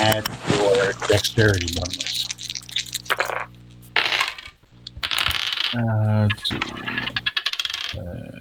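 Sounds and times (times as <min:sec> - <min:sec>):
speech: 0:00.1 - 0:02.3, 0:05.7 - 0:07.0
six-sided dice clattering across a table: 0:03.0 - 0:05.8, 0:06.9 - 0:08.0.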